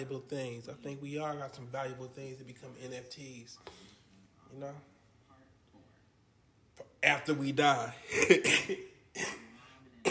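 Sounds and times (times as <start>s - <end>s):
speech: 0.0s - 3.9s, 4.5s - 4.9s, 6.8s - 9.4s
dry coughs: 8.0s - 10.1s.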